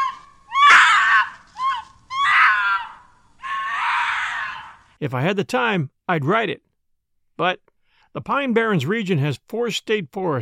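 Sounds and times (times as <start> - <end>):
loud harsh eerie half-human half-animal screams among thick pines: 0.0 - 4.9
speech: 5.0 - 6.7, 7.4 - 10.4.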